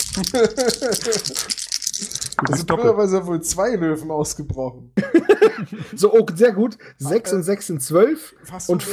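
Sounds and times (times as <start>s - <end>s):
laughter: 0.0s - 1.6s, 5.0s - 6.2s
dice shaken and rolled during a board game: 0.0s - 2.8s
speech: 0.2s - 8.9s.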